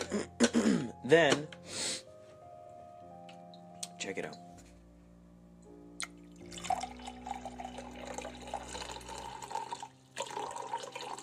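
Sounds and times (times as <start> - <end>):
speech: 1.1 - 1.8, 4.1 - 4.5
filtered water pouring into a glass: 6.1 - 11.2.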